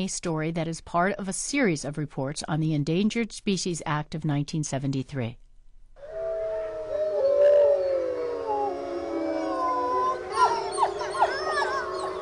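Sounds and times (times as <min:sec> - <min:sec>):
speech: 0:00.0 - 0:05.4
eastern gray wolf yips and wavering cries: 0:06.0 - 0:12.2
eastern gray wolves howling: 0:06.0 - 0:12.2.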